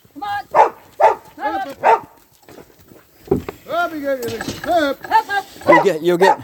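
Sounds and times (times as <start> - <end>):
dog barking: 0.5 - 2.2, 5.6 - 6.4
speech: 1.7 - 2.0, 3.9 - 6.4.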